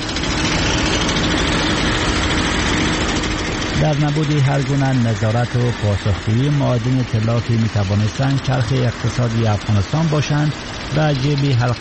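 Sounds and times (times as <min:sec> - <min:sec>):
heavy gold-mining machinery engines roaring in mountain foothills: 0:00.0 - 0:11.8
speech: 0:03.9 - 0:11.8.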